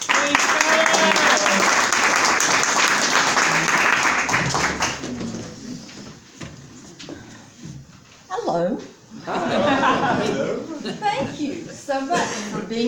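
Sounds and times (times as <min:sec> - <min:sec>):
crowd applause at an organization's gathering: 0:00.0 - 0:05.7
laughter: 0:09.1 - 0:12.7.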